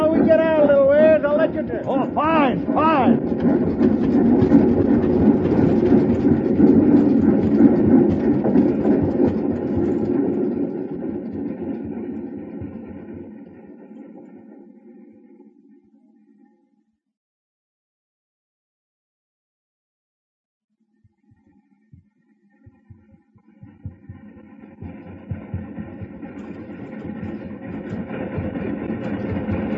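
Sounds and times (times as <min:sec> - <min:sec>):
train engine rumbling on rails approaching a high bridge: 0:00.0 - 0:13.6, 0:23.6 - 0:29.7
speech: 0:01.5 - 0:05.6.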